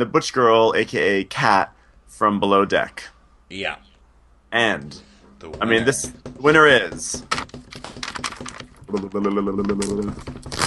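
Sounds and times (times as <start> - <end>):
speech: 0.0 - 3.9, 4.5 - 7.6, 8.9 - 10.6
perforated envelope being torn open: 9.8 - 10.6.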